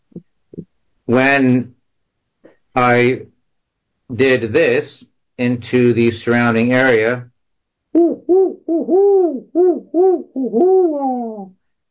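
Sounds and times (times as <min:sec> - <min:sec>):
speech: 0:01.1 - 0:01.7, 0:02.8 - 0:03.3, 0:04.1 - 0:07.3, 0:08.0 - 0:11.6
barred owl hooting in the woods: 0:08.0 - 0:11.5.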